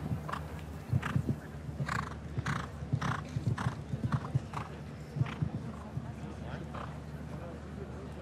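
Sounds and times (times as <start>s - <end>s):
show jumping horse hooves clopping: 0.0s - 7.0s
voices murmuring: 0.0s - 8.2s
show jumping horse snorting and breathing heavily: 0.2s - 5.4s.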